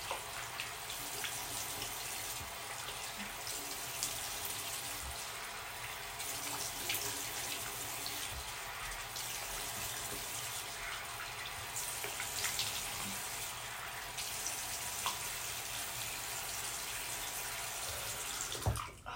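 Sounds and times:
tap water running into sink: 0.0 - 19.0.

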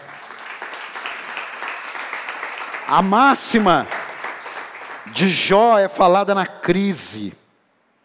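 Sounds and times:
crowd applauding: 0.0 - 6.1
speech: 2.9 - 4.0, 5.1 - 7.4.

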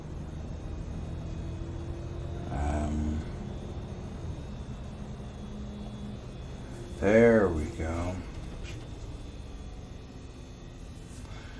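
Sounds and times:
continuous rattling hum in the back of a bus: 0.0 - 11.5
moving bus interior rumble: 0.0 - 11.5
speech: 7.0 - 8.2.

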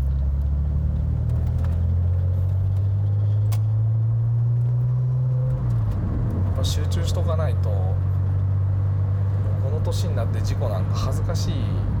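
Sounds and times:
car engine rumble while driven on the road: 0.0 - 11.9
speech: 6.6 - 8.1, 9.8 - 11.9.

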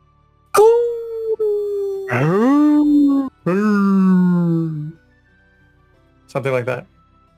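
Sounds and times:
person imitating a deep guttural wolf howl: 0.6 - 5.0
speech: 2.1 - 2.3, 3.4 - 3.8, 6.3 - 7.0.

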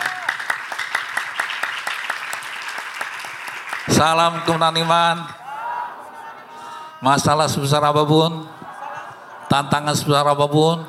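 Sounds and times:
crowd applauding with many hands clapping: 0.0 - 5.2
speech: 4.0 - 5.4, 7.0 - 8.6, 9.5 - 10.8.

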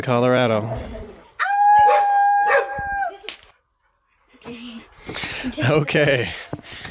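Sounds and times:
speech: 0.0 - 1.1, 5.4 - 6.5
dogs howling: 1.4 - 3.2
dogs yipping: 1.8 - 3.1.

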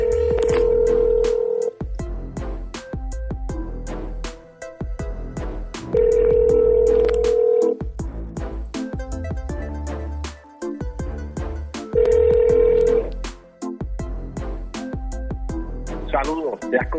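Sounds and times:
outgoing phone call ringback tones: 0.0 - 1.7, 6.0 - 7.8, 12.0 - 13.1
rhythmic music track: 0.0 - 16.9.

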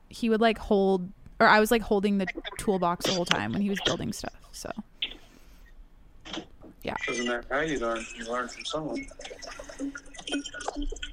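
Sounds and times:
speech: 0.1 - 4.9, 6.3 - 11.1
water pouring in gurgling splashing bursts: 6.9 - 11.1.

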